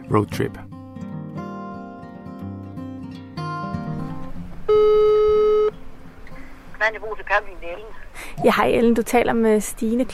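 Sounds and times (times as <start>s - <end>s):
speech: 0.1s - 0.7s, 6.9s - 10.1s
telephone ringback tone: 4.7s - 5.8s.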